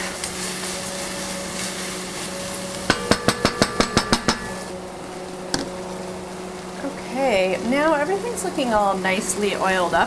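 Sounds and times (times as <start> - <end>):
steady low hiss: 0.0 - 10.0
utensil knocking against a cooking pot while stirring saffron, onions and garlic: 2.9 - 4.7
speech: 7.4 - 10.0.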